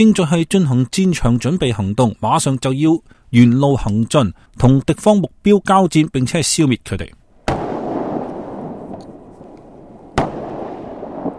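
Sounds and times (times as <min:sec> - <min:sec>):
speech: 0:00.0 - 0:07.2
continuous low rumble of explosions: 0:07.4 - 0:11.3
heavy tank cannon blast across an open range: 0:07.4 - 0:11.3.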